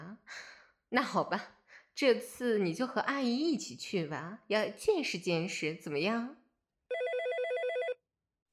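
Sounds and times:
speech: 0.9s - 6.4s
telephone ringing with warbling electronic trill: 6.9s - 8.0s.

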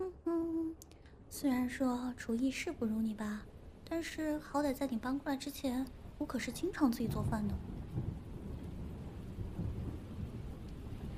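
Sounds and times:
steady rain: 0.0s - 11.1s
speech: 1.3s - 7.7s
low rolling rumble of thunder: 5.5s - 11.1s.

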